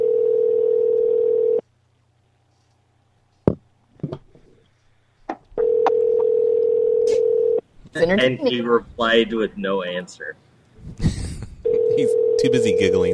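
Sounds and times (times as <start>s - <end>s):
telephone ringback tone on an unanswered call: 0.0s - 1.6s, 5.6s - 7.6s, 11.6s - 13.1s
speech: 8.0s - 10.5s, 12.0s - 13.1s.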